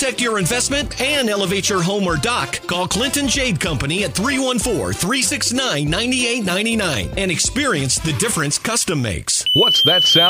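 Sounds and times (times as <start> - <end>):
speech: 0.0 - 10.2
boat dock electrical hazard alarm high-pitched electronic tone: 9.4 - 10.2.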